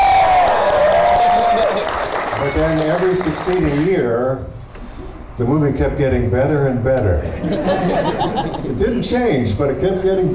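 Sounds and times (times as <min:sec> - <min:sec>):
crowd cheering and applauding: 0:00.0 - 0:03.9
speech: 0:02.6 - 0:04.6, 0:05.4 - 0:10.3
laughter: 0:07.2 - 0:08.8.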